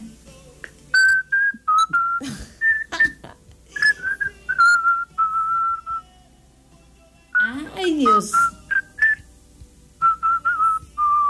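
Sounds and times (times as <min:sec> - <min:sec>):
person whistling a song melody: 0:01.0 - 0:03.1, 0:03.7 - 0:06.1, 0:07.4 - 0:09.3, 0:10.0 - 0:11.2.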